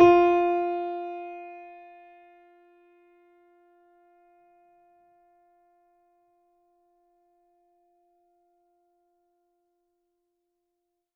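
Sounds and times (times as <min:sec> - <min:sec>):
mini grand piano: 0:00.0 - 0:02.1.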